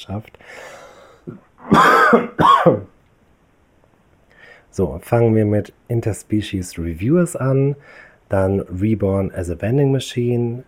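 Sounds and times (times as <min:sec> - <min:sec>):
speech: 0:00.0 - 0:02.9, 0:04.7 - 0:10.6
person clearing throat: 0:01.3 - 0:02.9
person coughing: 0:01.3 - 0:02.9.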